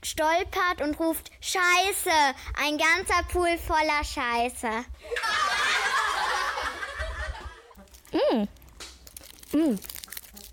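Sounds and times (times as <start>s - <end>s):
speech: 0.0s - 5.6s, 8.1s - 8.6s, 9.5s - 9.9s
laughter: 5.1s - 7.8s
foil crinkling as a chocolate Santa is unwrapped: 7.8s - 10.5s.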